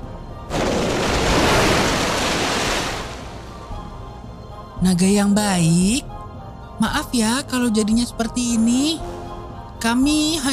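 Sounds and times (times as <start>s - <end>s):
splash of something plunging into a waterfall: 0.5s - 3.3s
speech: 4.8s - 6.1s, 6.8s - 9.2s, 9.8s - 10.5s.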